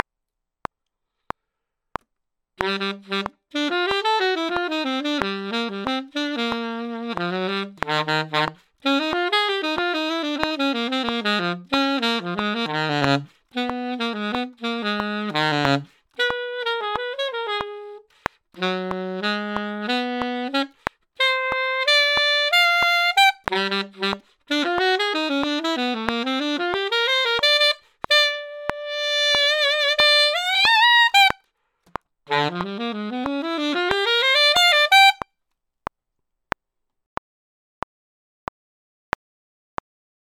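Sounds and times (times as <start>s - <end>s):
funk alto saxophone: 2.6s - 31.4s, 32.3s - 35.2s.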